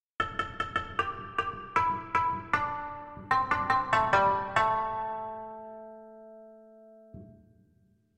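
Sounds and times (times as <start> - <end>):
shamisen: 0.2 - 6.1.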